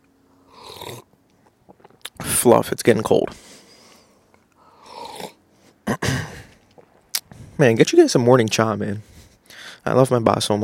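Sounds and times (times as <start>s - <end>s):
slurp of a hot drink being sipped: 0.5s - 1.0s
speech: 2.4s - 3.6s, 7.6s - 9.2s, 9.8s - 10.6s.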